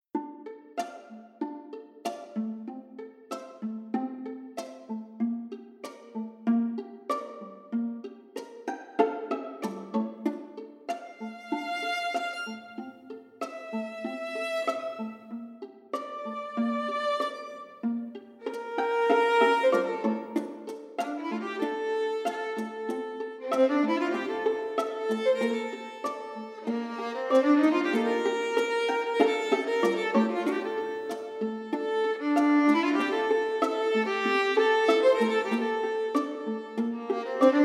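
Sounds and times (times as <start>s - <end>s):
orchestral string soloists playing: 0.0s - 37.6s.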